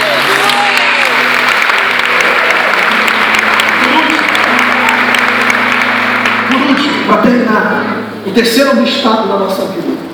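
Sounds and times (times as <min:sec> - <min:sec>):
applause during a worship service: 0:00.0 - 0:07.3
speech: 0:08.4 - 0:09.8.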